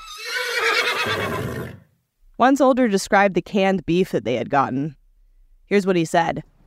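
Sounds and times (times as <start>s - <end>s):
horse neighing: 0.0s - 1.9s
speech: 1.0s - 1.8s, 2.4s - 5.0s, 5.7s - 6.5s.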